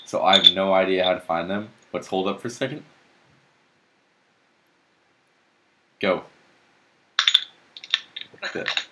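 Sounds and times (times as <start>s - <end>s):
beer being opened with metallic clicks and clinks: 0.0s - 1.2s, 7.2s - 8.9s
speech: 0.1s - 3.0s, 6.0s - 6.3s, 8.5s - 8.8s.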